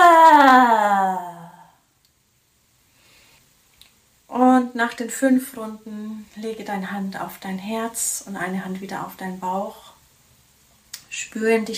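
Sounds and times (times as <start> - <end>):
loud human roar with tongue out during a breathing exercise: 0.0 - 1.7
speech: 4.8 - 9.9, 11.2 - 11.7.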